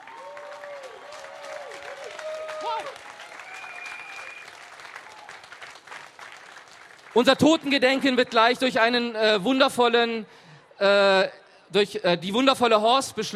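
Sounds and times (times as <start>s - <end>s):
audience applause at a remembrance ceremony for the dead: 0.0s - 7.4s
speech: 2.8s - 3.1s, 7.2s - 13.3s.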